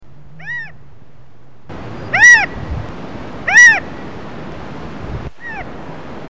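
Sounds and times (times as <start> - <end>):
California Quail calling: 0.4 - 0.8, 1.7 - 4.2, 5.4 - 5.8.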